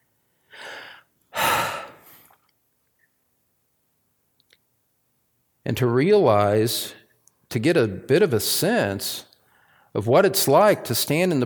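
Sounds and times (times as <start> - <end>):
person taking a deep breath: 0.4 - 2.4, 9.5 - 9.9
speech: 5.7 - 9.3, 10.0 - 11.4.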